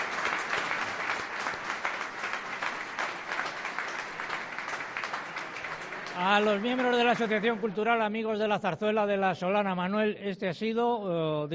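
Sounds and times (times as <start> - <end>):
audience applause after a zarzuela performance: 0.0 - 8.4
speech: 6.2 - 11.5.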